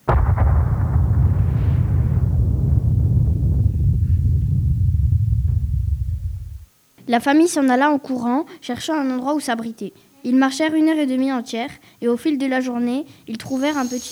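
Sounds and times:
crackling bursts of volcanic eruption: 0:00.0 - 0:06.7, 0:13.5 - 0:14.0
massive volcanic eruption roaring: 0:00.0 - 0:06.7
speech: 0:07.1 - 0:14.0.

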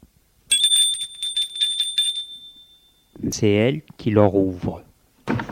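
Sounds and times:
doorbell ringing at an old house: 0:00.5 - 0:03.2
speech: 0:03.3 - 0:05.4.

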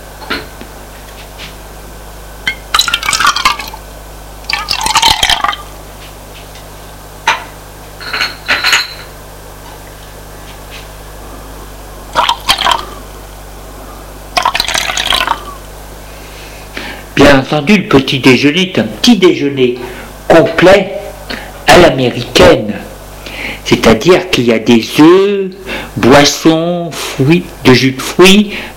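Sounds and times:
low hum: 0:00.0 - 0:28.7
tea and coffee poured into cups: 0:02.7 - 0:03.8, 0:04.4 - 0:05.7, 0:12.1 - 0:13.0, 0:14.3 - 0:15.6
speech: 0:17.3 - 0:21.0, 0:21.8 - 0:22.8, 0:23.7 - 0:28.7.

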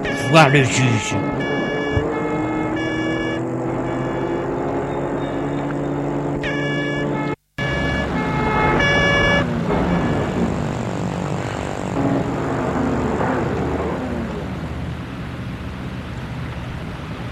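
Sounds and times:
car horn toots in Paris night traffic: 0:00.0 - 0:10.5
car engines and passing vehicles in night-time city traffic in Paris: 0:00.0 - 0:17.3
speech: 0:00.3 - 0:01.7.

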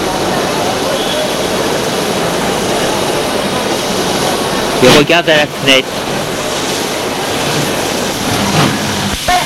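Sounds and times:
train rumbling as it prepares to pull out of a station: 0:00.0 - 0:09.4
speech: 0:04.8 - 0:06.2
train clunk: 0:07.3 - 0:09.4.

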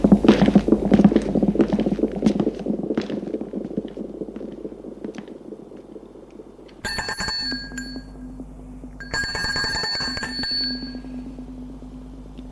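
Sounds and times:
footsteps shuffling and thudding: 0:00.0 - 0:06.8
electric doorbell ringing: 0:06.8 - 0:08.2, 0:09.0 - 0:11.2.

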